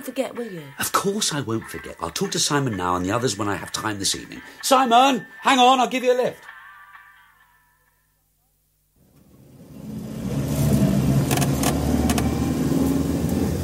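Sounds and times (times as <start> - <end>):
speech: 0.0 - 6.5
car engine cranking slowly and running with a loud rumble: 9.0 - 13.6
sharp rattles and clicks over the running car engine: 11.2 - 12.3.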